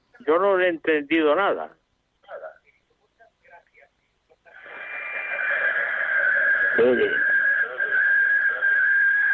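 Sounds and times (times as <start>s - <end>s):
speech: 0.2s - 1.8s, 6.8s - 7.3s
noise from caller's radio playing: 4.3s - 9.3s
loud steady feedback whine: 4.5s - 9.3s
voice fragments over a phone line: 6.8s - 8.8s.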